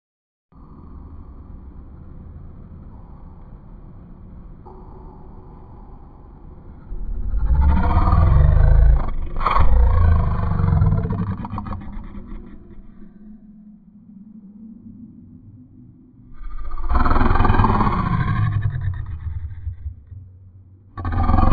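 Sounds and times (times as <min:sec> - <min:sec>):
growls: 0:06.8 - 0:13.3, 0:16.3 - 0:20.2, 0:21.0 - 0:21.5.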